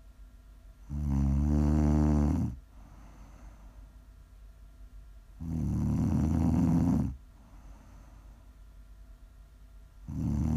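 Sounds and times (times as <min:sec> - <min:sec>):
faint steady hiss: 0:00.0 - 0:10.5
loud rasping snoring with a rattling rumble: 0:00.9 - 0:02.6, 0:05.4 - 0:07.2, 0:10.0 - 0:10.5.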